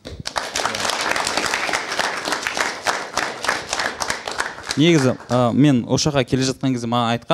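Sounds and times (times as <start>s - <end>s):
audience clapping for a guest welcomed onto a stage: 0.0s - 5.8s
speech: 4.8s - 7.3s.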